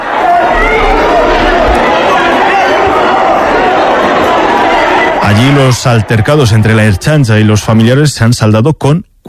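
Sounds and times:
large crowd applauding at airport arrivals: 0:00.0 - 0:07.0
large crowd cheering at airport arrivals: 0:00.0 - 0:07.8
speech: 0:05.3 - 0:09.2.

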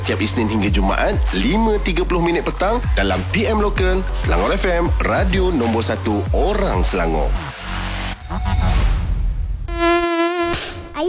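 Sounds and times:
speech: 0:00.0 - 0:07.6, 0:08.3 - 0:08.7
Aedes mosquito buzzing in a home with standing water: 0:09.7 - 0:10.9.

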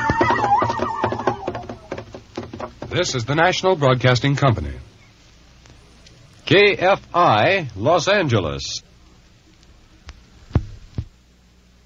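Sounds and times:
horse whinnying: 0:00.0 - 0:02.2
irregular sharp knocks: 0:00.0 - 0:03.3
speech: 0:02.9 - 0:04.9, 0:06.5 - 0:08.8.

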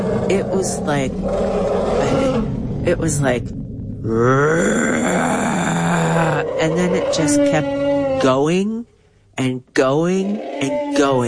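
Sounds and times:
elephant roaring in a forest: 0:00.0 - 0:02.8, 0:03.9 - 0:08.4
steady low rumble: 0:00.0 - 0:09.4
speech: 0:00.3 - 0:11.2.

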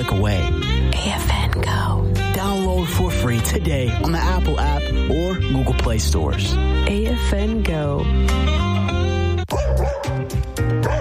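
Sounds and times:
speech: 0:00.0 - 0:09.0
dog barking while chasing a squirrel: 0:09.5 - 0:10.9.

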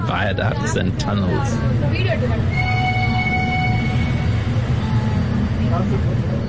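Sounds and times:
speech: 0:00.1 - 0:02.8, 0:05.8 - 0:06.4
old-fashioned locomotive train chugging: 0:02.1 - 0:06.4.

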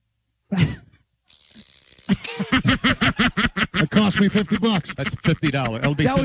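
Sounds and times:
fart machine sound effect: 0:01.3 - 0:02.2
laughter: 0:02.1 - 0:06.2
speech: 0:04.0 - 0:06.2.

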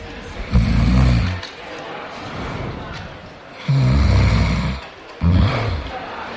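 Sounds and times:
loud rattling snoring: 0:00.5 - 0:01.4, 0:03.6 - 0:06.0.

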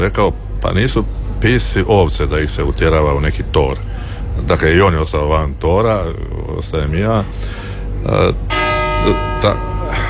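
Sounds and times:
speech: 0:00.0 - 0:10.0
church bell ringing: 0:08.4 - 0:10.0.

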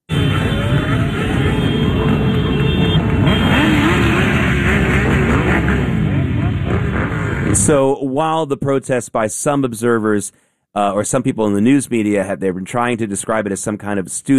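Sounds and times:
scooter engines buzzing and revving on a busy city street: 0:00.1 - 0:07.8
speech: 0:07.7 - 0:14.3.

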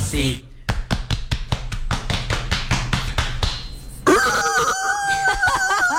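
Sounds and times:
speech: 0:00.1 - 0:00.5
series of sharp taps: 0:00.7 - 0:03.7
rooster crowing: 0:04.1 - 0:05.9.

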